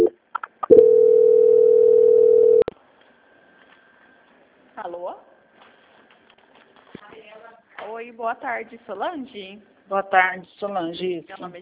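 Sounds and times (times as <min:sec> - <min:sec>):
steady telephone line tone while a phone call is transferred: 0:00.7 - 0:02.7
speech: 0:08.2 - 0:11.6.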